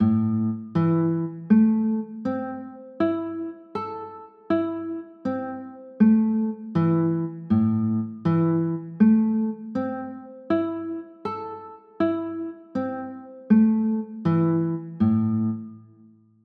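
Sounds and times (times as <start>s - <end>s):
A minor chords: 0.0s - 16.0s.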